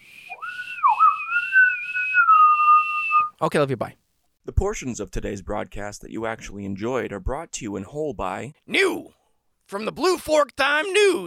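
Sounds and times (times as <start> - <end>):
person whistling: 0.0 - 3.3
speech: 3.4 - 11.2.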